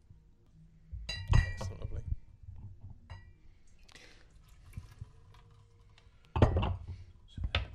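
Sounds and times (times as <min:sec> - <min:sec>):
wine bottle glassy clinks: 0:01.1 - 0:01.8
American wine being poured: 0:03.6 - 0:07.4.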